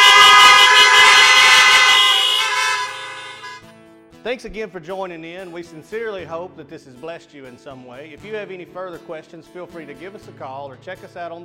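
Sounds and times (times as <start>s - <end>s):
many car horns honking at a drive-in church service outdoors: 0.0s - 3.6s
speech: 4.3s - 11.4s.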